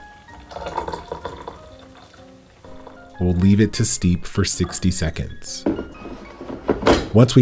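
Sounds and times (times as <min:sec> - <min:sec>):
hot water pouring into a teacup: 0:00.0 - 0:03.5
speech: 0:03.2 - 0:05.8, 0:07.1 - 0:07.3.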